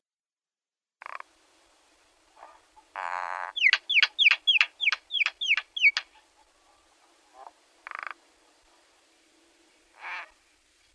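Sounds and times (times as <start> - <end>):
myna calling: 3.0 - 6.2.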